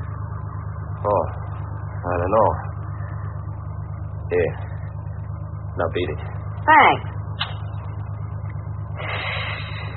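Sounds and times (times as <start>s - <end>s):
car engine running: 0.0s - 9.9s
speech: 1.0s - 1.4s, 2.0s - 2.7s, 4.3s - 4.7s, 5.8s - 7.1s.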